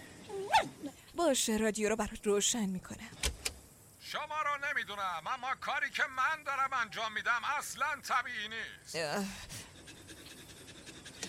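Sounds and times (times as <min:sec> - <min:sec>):
speech: 0:00.6 - 0:03.3, 0:04.1 - 0:09.6
dog panting: 0:09.4 - 0:11.2.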